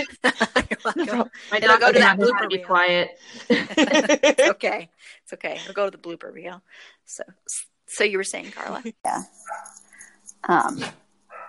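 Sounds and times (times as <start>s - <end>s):
laughter: 0.0s - 2.5s, 3.4s - 4.6s
speech: 0.0s - 9.8s, 10.4s - 11.0s
dog barking: 9.4s - 9.8s.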